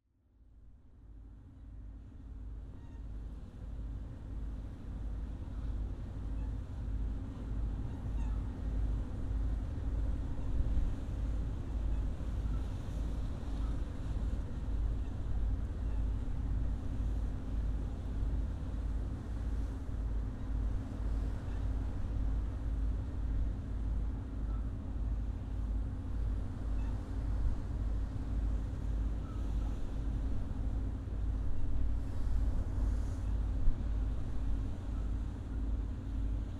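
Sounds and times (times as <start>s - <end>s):
wind: 0.0s - 36.5s
ship engine: 0.5s - 36.5s.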